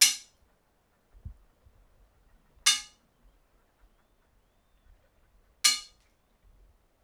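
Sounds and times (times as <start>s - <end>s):
hits on iron bars in broch centre courtyard: 0.0s - 0.3s, 2.7s - 3.0s, 5.7s - 6.0s.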